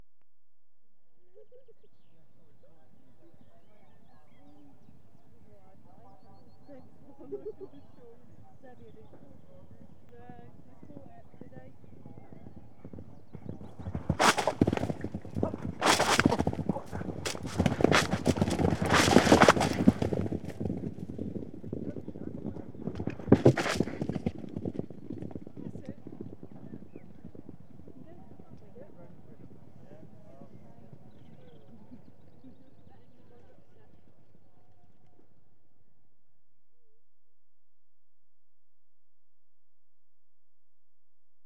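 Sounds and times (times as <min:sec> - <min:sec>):
large field of horses in point-to-point racing: 0:02.3 - 0:34.4.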